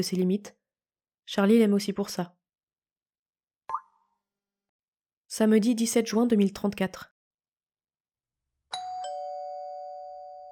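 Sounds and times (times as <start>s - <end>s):
speech: 0.0s - 0.6s, 1.3s - 2.4s, 5.3s - 7.1s
doorbell chime: 8.7s - 10.5s.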